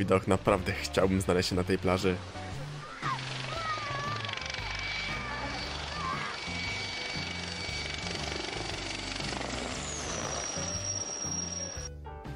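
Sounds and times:
speech: 0:00.0 - 0:02.5
military helicopter making a low pass over a beach: 0:00.0 - 0:11.9
military helicopter turbine whining: 0:00.0 - 0:11.9
military helicopter rotor thumping: 0:02.2 - 0:11.9.

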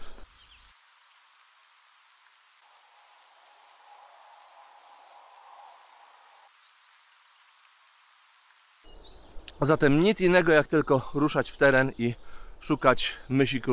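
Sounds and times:
goldcrest or firecrest high-pitched contact calls: 0:00.3 - 0:08.7
speech: 0:09.6 - 0:13.7.

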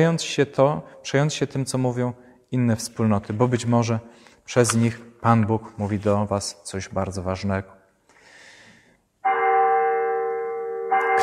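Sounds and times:
speech: 0:00.0 - 0:07.8
church bell ringing for holy mass: 0:09.2 - 0:11.2.

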